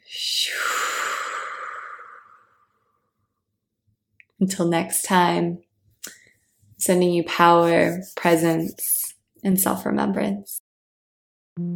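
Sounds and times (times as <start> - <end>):
long audible exhale during a closing breathing round: 0.4 - 2.8
speech: 4.4 - 5.7, 6.8 - 10.6, 11.6 - 11.7.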